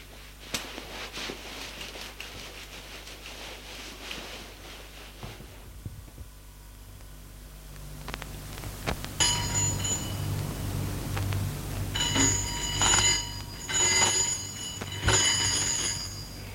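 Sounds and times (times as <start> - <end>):
low hum: 5.0 - 16.5
apartment intercom buzzer ringing: 9.2 - 10.7, 11.9 - 16.5.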